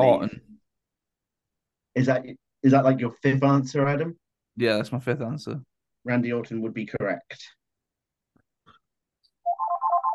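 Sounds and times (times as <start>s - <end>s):
speech: 0.0s - 0.5s, 2.0s - 7.6s
phone ringtone warbling electronic melody: 9.4s - 10.1s.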